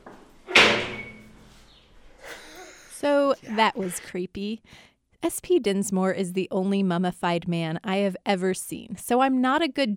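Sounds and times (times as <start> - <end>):
door slamming shut: 0.5 - 1.4
speech: 3.4 - 9.9.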